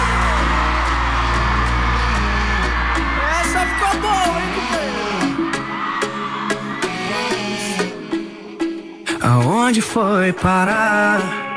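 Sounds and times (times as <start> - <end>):
whoops from the audience: 0.0 - 7.4
live audience shouting and cheering: 0.0 - 8.2
speech: 9.7 - 11.4.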